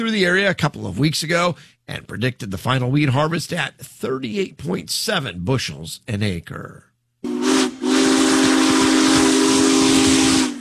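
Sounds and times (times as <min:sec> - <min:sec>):
speech: 0:00.0 - 0:06.9
loud steam locomotive whistle: 0:07.2 - 0:10.5.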